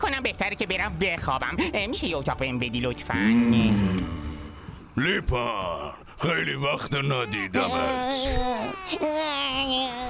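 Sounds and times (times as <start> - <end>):
speech: 0.1 - 4.4, 5.0 - 10.0
baby crying: 7.1 - 10.0.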